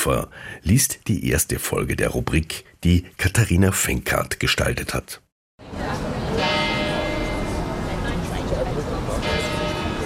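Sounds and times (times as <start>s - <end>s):
speech: 0.0s - 5.8s
church bells ringing: 6.2s - 10.0s.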